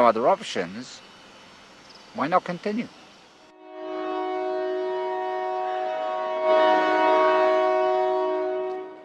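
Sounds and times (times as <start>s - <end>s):
speech: 0.0s - 1.1s, 2.1s - 3.0s
rumbling rail noise of passing passenger train: 0.0s - 9.0s
passenger train horn multi-tone blast: 3.5s - 9.0s.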